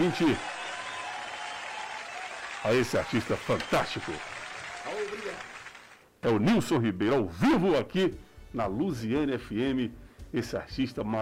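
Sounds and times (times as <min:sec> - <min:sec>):
speech: 0:00.0 - 0:00.5, 0:02.6 - 0:04.3, 0:06.2 - 0:11.2
recorded applause: 0:00.0 - 0:06.1.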